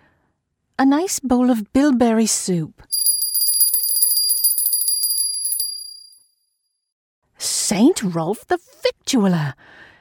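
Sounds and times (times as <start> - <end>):
speech: 0.8 - 3.0, 7.7 - 9.9
small silver bell ringing: 2.9 - 6.3.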